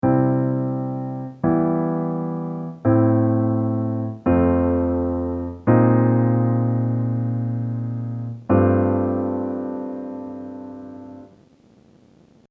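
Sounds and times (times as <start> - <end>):
chord progression in C: 0.0 - 11.3.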